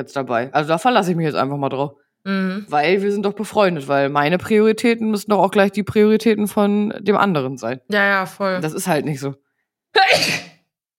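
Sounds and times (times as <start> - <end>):
speech: 0.0 - 10.5
loud sneeze: 9.9 - 10.7.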